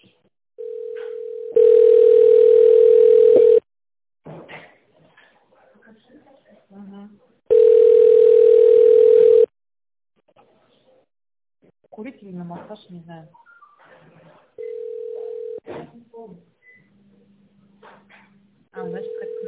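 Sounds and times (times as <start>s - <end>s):
telephone ringing in electronic bursts: 0.6s - 3.6s, 7.5s - 9.5s, 14.6s - 15.6s, 18.8s - 19.4s
speech: 12.7s - 13.4s.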